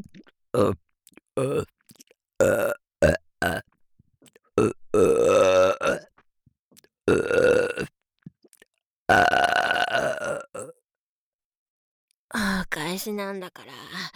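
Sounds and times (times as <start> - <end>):
big loud burps: 0.0 - 0.8, 1.4 - 1.7, 2.4 - 3.7, 4.6 - 6.1, 7.1 - 7.9, 9.1 - 10.8
speech: 0.5 - 0.8, 1.4 - 1.7, 2.4 - 2.8, 13.1 - 14.1.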